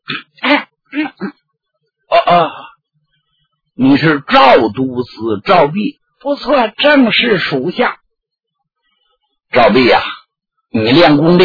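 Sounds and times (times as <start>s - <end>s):
storyteller imitating a man coughing hard: 2.1s - 2.7s
speech: 3.8s - 8.0s, 9.5s - 10.1s, 10.7s - 11.4s.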